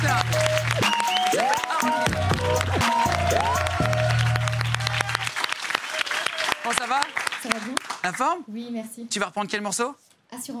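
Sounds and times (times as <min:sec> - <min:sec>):
crowd applauding with dense clapping: 0:00.0 - 0:08.3
speech: 0:08.1 - 0:10.5.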